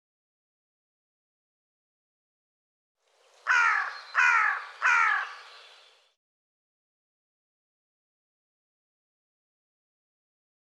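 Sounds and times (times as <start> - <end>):
bird cawing: 3.4 - 6.0.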